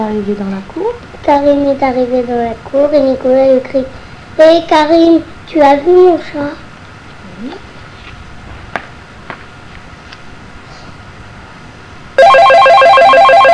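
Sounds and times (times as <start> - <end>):
speech: 0.0 - 6.6
telephone ringing with an electronic warbling tone: 12.2 - 13.5.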